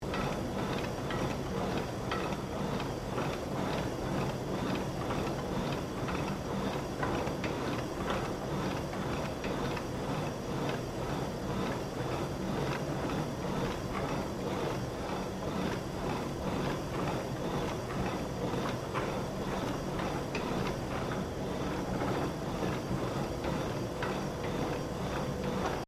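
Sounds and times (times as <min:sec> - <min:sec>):
gym crosstrainer machine operating: 0:00.0 - 0:25.8.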